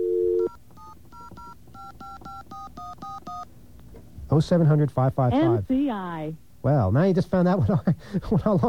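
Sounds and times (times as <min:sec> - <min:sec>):
brief steady tone on a touch-tone telephone: 0:00.0 - 0:03.5
speech: 0:04.3 - 0:08.6
voice answering on the telephone line: 0:05.3 - 0:05.7.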